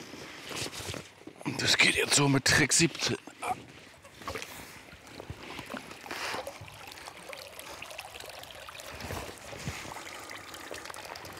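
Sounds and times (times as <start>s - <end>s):
speech: 1.5s - 3.7s
water dripping and trickling from a lifted fish cage through fine mesh: 3.7s - 11.3s
brief brighter water gush: 4.6s - 11.3s.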